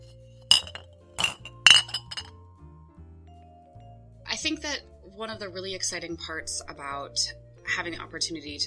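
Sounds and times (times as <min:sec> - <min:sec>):
hot glass piece clinking on a metal pipe cooler: 0:00.5 - 0:02.4
speech: 0:04.4 - 0:08.6.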